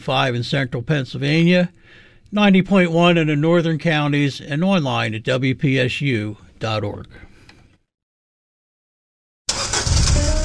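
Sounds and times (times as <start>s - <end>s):
speech: 0.0s - 7.3s
old clunker car engine starting and rumbling: 9.5s - 10.4s.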